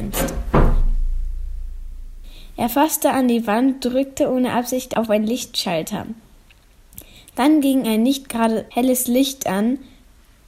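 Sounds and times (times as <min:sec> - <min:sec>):
heavy door slamming shut: 0:00.0 - 0:02.5
speech: 0:02.6 - 0:06.2, 0:07.4 - 0:09.9.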